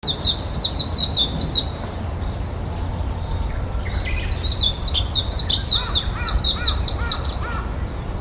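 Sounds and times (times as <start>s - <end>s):
mejiro white-eye bird: 0.0s - 8.1s.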